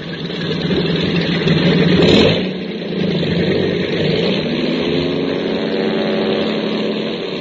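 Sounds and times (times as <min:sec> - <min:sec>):
propeller engines of three airplanes roaring during takeoff: 0:00.0 - 0:07.3.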